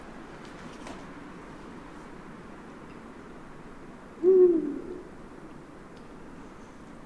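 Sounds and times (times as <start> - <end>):
Eurasian eagle-owl hooting: 4.2 - 5.2.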